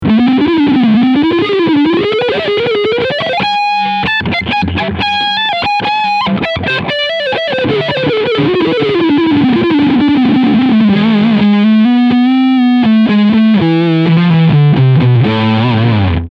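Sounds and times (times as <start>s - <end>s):
Harley Benton SC 450Plus guitar with overdrive on front pickup: 0.0s - 16.3s.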